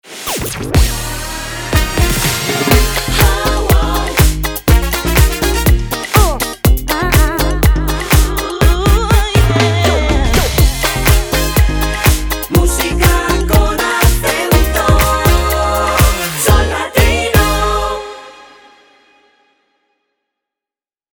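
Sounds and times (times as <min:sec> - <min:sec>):
Latin son music: 0:00.8 - 0:19.0.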